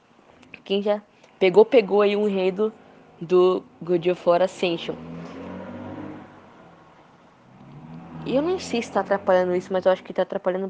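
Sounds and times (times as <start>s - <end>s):
speech: 0.7s - 5.1s, 8.3s - 10.6s
another engine hum: 2.0s - 10.4s
noisy car engine revving while driving past outside: 3.6s - 10.2s.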